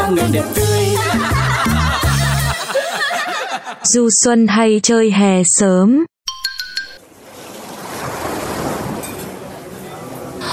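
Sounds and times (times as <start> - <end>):
speech: 0.1 - 1.3, 3.7 - 6.1
laughter: 0.8 - 4.0
bright chiming notes: 6.3 - 7.0
sea waves rushing at a sunny beach: 7.0 - 10.5.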